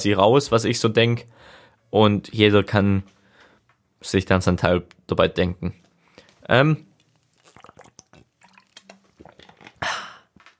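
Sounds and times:
speech: 0:00.0 - 0:03.2, 0:04.0 - 0:05.8, 0:06.4 - 0:06.9
wet sipping of water: 0:06.1 - 0:10.5
gulping swallow of water: 0:07.3 - 0:10.3.

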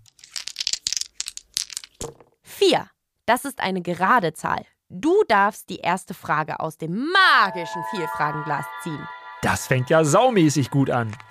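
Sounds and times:
die rolled to start a game, clattering: 0:00.0 - 0:02.3
speech: 0:02.6 - 0:11.3.

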